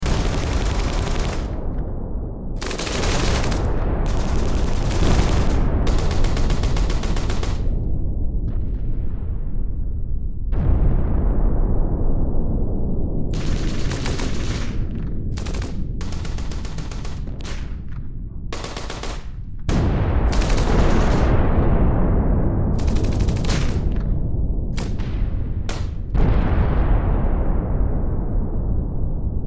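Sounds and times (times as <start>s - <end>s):
WWII battlefield gunfire: 0.0s - 1.8s, 2.6s - 7.8s, 13.3s - 22.0s, 22.8s - 24.2s, 24.8s - 26.8s
WWII battlefield explosions: 0.0s - 29.4s.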